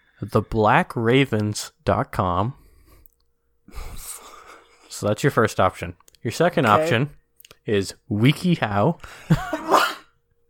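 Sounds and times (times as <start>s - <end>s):
speech: 0.2s - 2.6s, 3.7s - 4.0s, 5.0s - 9.7s
stifled sneeze: 9.5s - 10.1s.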